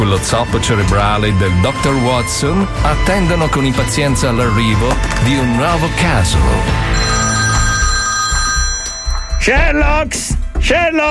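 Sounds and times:
speech: 0.0 - 7.2, 9.4 - 11.0
telephone bell ringing: 6.9 - 9.6.

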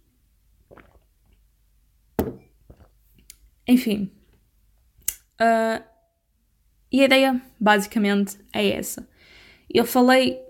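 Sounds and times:
person sipping and gulping water: 0.6 - 1.4
cup or bottle set down thunk: 2.2 - 2.9
speech: 3.7 - 4.2, 5.4 - 5.9, 6.9 - 10.4.

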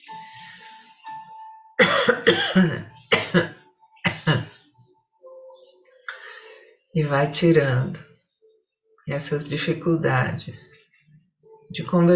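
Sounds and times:
speech: 1.8 - 3.5, 7.0 - 8.1, 9.1 - 10.8, 11.7 - 12.1
person coughing in loud harsh bursts: 1.8 - 4.6.

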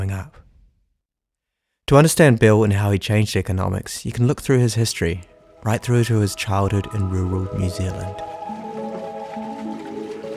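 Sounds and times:
speech: 1.9 - 8.6
water wheel turning with water splashing and churning: 5.3 - 10.3.

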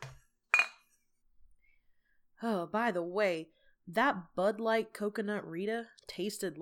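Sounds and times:
glasses clinking together in a toast: 0.6 - 0.8
speech: 2.4 - 6.6.

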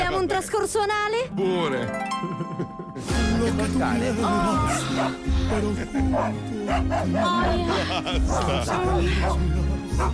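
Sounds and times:
speech: 0.2 - 2.8, 3.4 - 10.1
laughter: 2.1 - 3.4, 4.8 - 9.4
several truffle dogs barking and yipping excitedly: 4.6 - 10.1.

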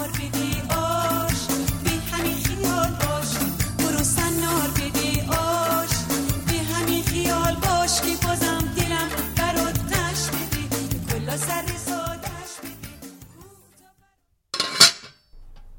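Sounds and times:
music: 0.0 - 14.2
metallic clank of a lid lifted off a cooking pot: 14.6 - 15.7.

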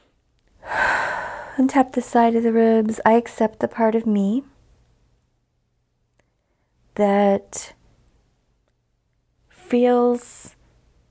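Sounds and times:
deep breath in during a guided tapping exercise: 0.6 - 1.6
speech: 1.6 - 4.5, 7.0 - 7.8, 9.7 - 10.6.

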